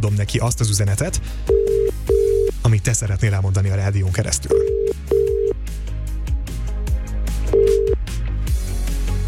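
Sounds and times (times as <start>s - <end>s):
speech: 0.0s - 1.8s, 2.7s - 5.2s
rhythmic music with beats: 1.4s - 2.6s, 4.5s - 9.2s
telephone line ringing: 1.5s - 2.5s, 4.5s - 5.6s, 7.6s - 8.0s.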